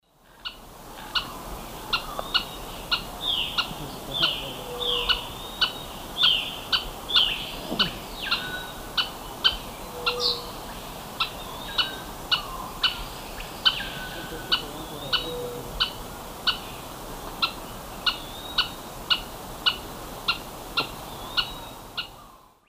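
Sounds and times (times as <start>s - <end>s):
Myiozetetes granadensis call in South American eastern lowlands: 0.4s - 22.6s.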